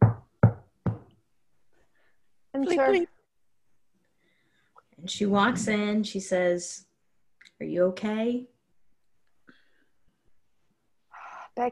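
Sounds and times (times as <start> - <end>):
firm knocking on a wooden door: 0.0 - 1.1
speech: 2.6 - 3.2, 5.0 - 6.9, 7.6 - 8.5.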